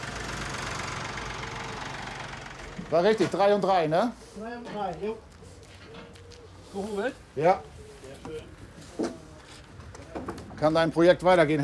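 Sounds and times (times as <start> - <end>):
tractor engine idling: 0.0 - 4.9
speech: 2.9 - 5.3, 6.7 - 8.4, 10.6 - 11.6.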